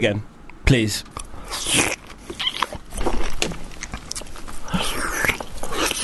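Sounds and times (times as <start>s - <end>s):
speech: 0.0s - 1.9s
slurpy chewing of juicy fruit: 1.2s - 6.0s.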